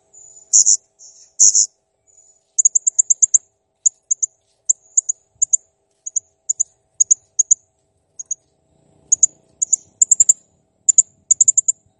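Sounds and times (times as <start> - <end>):
blue-crowned hanging parrot in full active song: 0.2 - 1.7, 2.6 - 7.6, 9.1 - 11.8.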